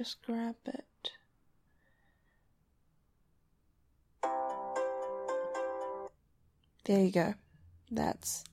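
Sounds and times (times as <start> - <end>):
speech: 0.0 - 1.2, 6.9 - 8.5
phone ringtone playing a repeating melodic pattern: 4.2 - 6.1.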